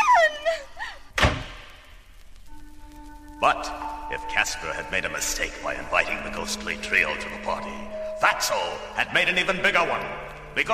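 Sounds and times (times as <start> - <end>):
door being shut with a heavy thud: 1.2 - 1.7
speech: 3.4 - 10.7.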